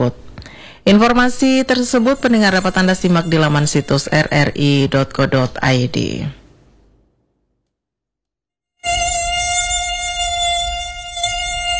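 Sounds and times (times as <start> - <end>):
speech: 0.0 - 0.2, 0.8 - 6.4
mosquito whine by the ear: 1.6 - 5.2, 8.8 - 11.7.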